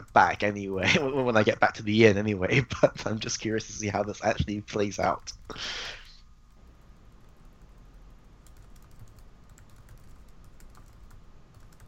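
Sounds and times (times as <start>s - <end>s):
low hiss: 0.0s - 11.8s
speech: 0.1s - 6.0s
typing on a computer keyboard: 7.2s - 11.8s.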